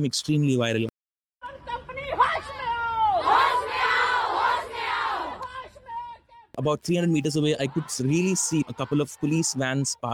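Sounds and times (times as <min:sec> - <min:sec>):
speech: 0:00.0 - 0:00.9, 0:06.6 - 0:10.1
crowd of protesters chanting slogans against a company: 0:02.2 - 0:09.9.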